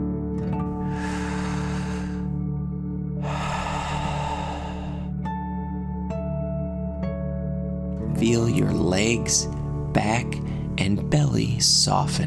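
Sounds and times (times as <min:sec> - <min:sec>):
steady soft music: 0:00.0 - 0:12.2
guided deep dragon breaths in and out: 0:00.8 - 0:02.4, 0:03.2 - 0:05.3
speech: 0:08.2 - 0:12.2.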